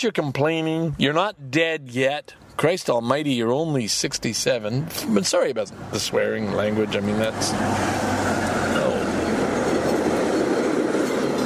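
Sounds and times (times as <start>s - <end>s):
speech: 0.0s - 8.3s
passenger train rushing past on the rails with wheel clatter: 5.8s - 11.4s.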